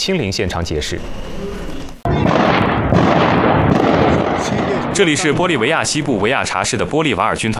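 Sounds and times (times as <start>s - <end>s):
speech: 0.0s - 1.4s, 5.0s - 7.5s
powerful explosion at military barracks: 2.0s - 6.9s
loud sustained roaring rumble: 2.0s - 7.4s.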